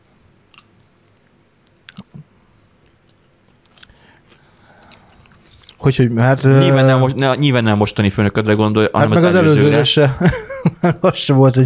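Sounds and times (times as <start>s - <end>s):
chewing food: 0.5s - 5.8s
speech: 5.8s - 11.6s
laughter: 9.1s - 11.5s.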